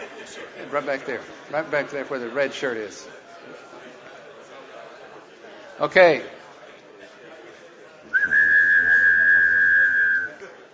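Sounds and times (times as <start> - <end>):
speech: 0.7 - 3.6, 5.8 - 6.4
person whistling two tones at once, as people whistle in Chickasha: 8.2 - 10.4.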